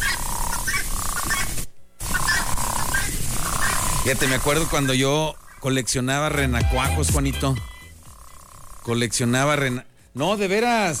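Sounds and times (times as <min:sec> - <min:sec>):
dense chorus of frogs croaking: 0:00.0 - 0:06.3, 0:07.6 - 0:09.9
speech: 0:04.0 - 0:07.7, 0:08.8 - 0:10.9.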